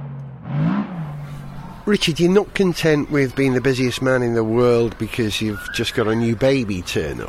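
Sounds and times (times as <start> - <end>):
racing car engine revving at the Malaysian Grand Prix: 0.0 - 1.8
speech: 1.9 - 7.2.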